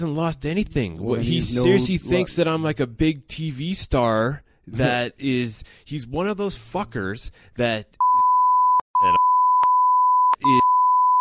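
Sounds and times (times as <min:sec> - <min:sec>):
speech: 0:00.0 - 0:08.0, 0:09.0 - 0:09.3, 0:10.4 - 0:10.6
brief fragments of a voice: 0:01.0 - 0:02.5, 0:09.0 - 0:09.2
loud steady high-pitched censor bleep: 0:08.0 - 0:11.1.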